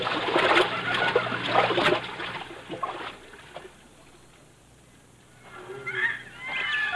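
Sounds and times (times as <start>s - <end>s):
people sloshing and splashing while wading across a river: 0.0s - 4.2s
faint bird calls: 5.3s - 6.9s.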